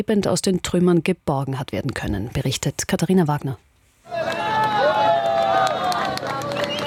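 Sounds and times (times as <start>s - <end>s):
speech: 0.0s - 4.4s
crowd cheering and shouting at a rescue: 4.1s - 6.8s
sharp whistles: 6.5s - 6.8s.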